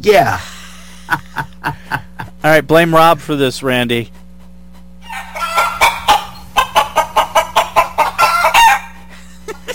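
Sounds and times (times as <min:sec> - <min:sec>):
speech: 0:00.0 - 0:00.5, 0:02.4 - 0:04.2
laughter: 0:00.4 - 0:02.4, 0:09.1 - 0:09.7
flock of chickens clucking: 0:04.4 - 0:09.7.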